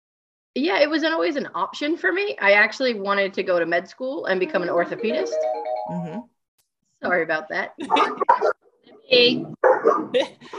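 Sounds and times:
speech: 0.6s - 6.3s, 7.0s - 10.5s
dog barking: 7.8s - 8.6s, 9.5s - 10.5s.

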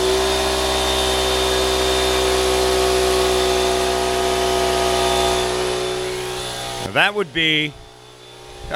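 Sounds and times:
1.5 horsepower 6-gallon air compressor running beneath a workbench: 0.0s - 8.7s
speech: 7.0s - 7.8s.

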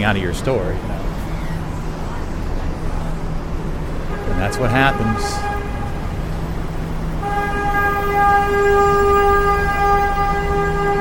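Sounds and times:
speech: 0.0s - 1.1s, 4.3s - 5.6s, 8.2s - 10.1s
street traffic rumble on a New York City street: 0.0s - 10.9s
car horn blaring: 3.8s - 10.9s.

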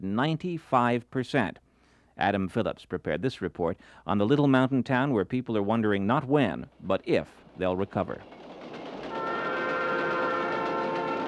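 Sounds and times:
speech: 0.0s - 1.6s, 2.2s - 8.4s
coal train rumbling and chugging past: 6.3s - 11.2s.

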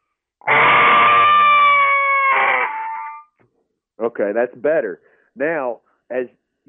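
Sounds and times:
game call imitating a screaming buck: 0.4s - 3.2s
speech: 4.0s - 6.6s.

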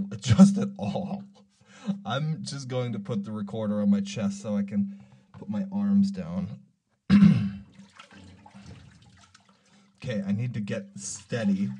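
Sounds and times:
speech: 0.2s - 1.1s, 2.1s - 7.3s, 10.0s - 11.7s
water sloshing as a person moves through it: 7.6s - 10.0s, 11.0s - 11.7s.

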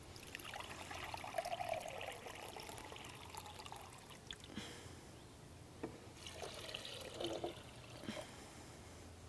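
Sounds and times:
water pouring into a container for making soursop juice: 0.1s - 4.6s, 6.2s - 8.2s.

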